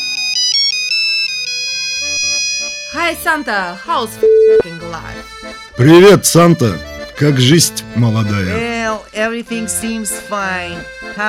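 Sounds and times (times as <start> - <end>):
speech: 2.9 - 11.2
satellite phone ringing: 4.2 - 4.7.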